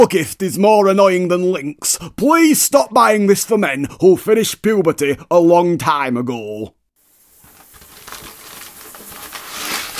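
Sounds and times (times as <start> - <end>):
speech: 0.0 - 6.8
stripy wrapping paper crinkling as it is unwrapped: 7.1 - 9.9.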